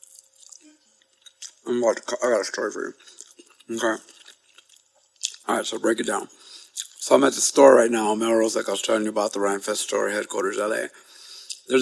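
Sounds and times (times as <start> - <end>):
chewing a mouthful of broccoli: 0.0 - 7.2, 11.2 - 11.7
speech: 1.6 - 4.2, 5.5 - 6.5, 7.1 - 11.1.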